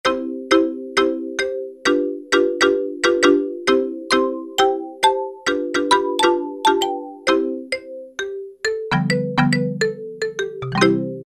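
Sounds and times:
wide marimba preset on a synthesizer module: 0:00.1 - 0:11.2.

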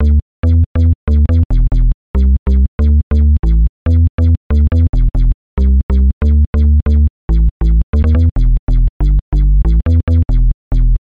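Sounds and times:
synth bass texture: 0:00.1 - 0:02.4, 0:03.5 - 0:11.0.

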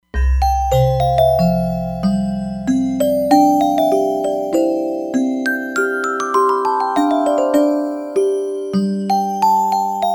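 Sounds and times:
synthesizer music bells: 0:00.3 - 0:10.0.

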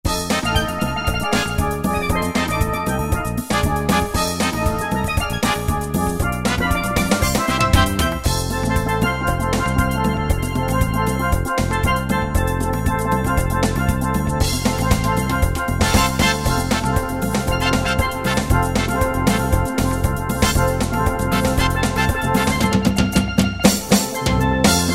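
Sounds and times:
soca preset style on a Yamaha QY70: 0:00.0 - 0:24.9.

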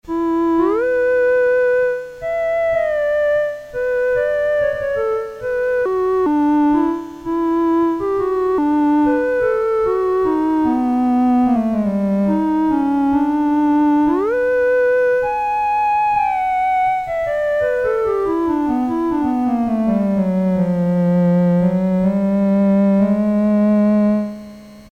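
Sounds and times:
clarinet tone sampled on a Casio SK-1 keyboard: 0:00.0 - 0:24.9.

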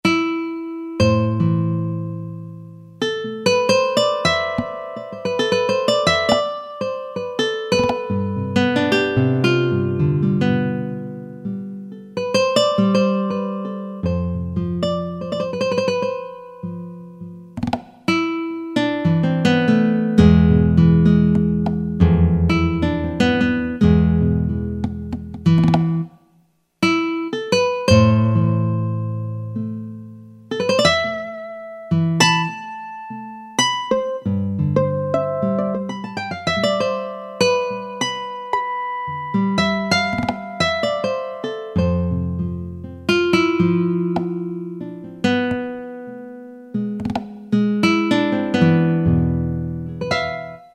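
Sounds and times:
nylon guitar with effects and Latin drum machine: 0:00.0 - 0:50.7
Latin drum machine beat: 0:17.6 - 0:18.1, 0:21.4 - 0:22.0, 0:24.8 - 0:26.1, 0:40.0 - 0:40.6.

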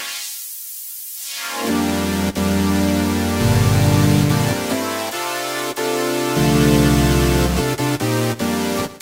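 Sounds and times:
Korg microKORG high-pass filtered minor seventh chord: 0:01.8 - 0:08.8.

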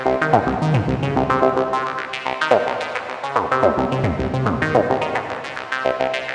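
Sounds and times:
gated reverb sound: 0:00.1 - 0:06.2.

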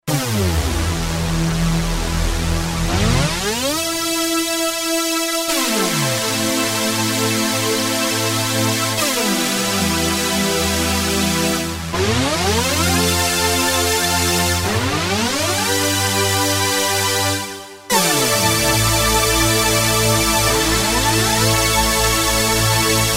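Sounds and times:
Porta Synthex and Roland SR-JV80-09 synthesizer session: 0:00.0 - 0:23.1.

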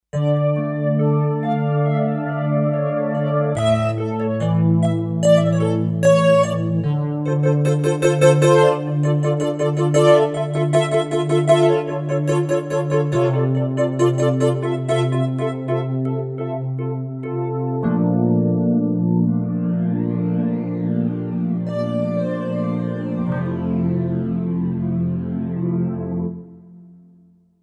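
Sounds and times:
Kawai K5000S synthesizer velocity square tone: 0:00.2 - 0:26.5.

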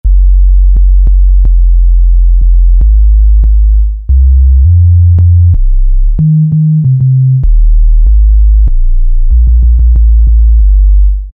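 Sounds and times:
sub bass from a Korg MS2000 synthesizer: 0:00.0 - 0:11.3.

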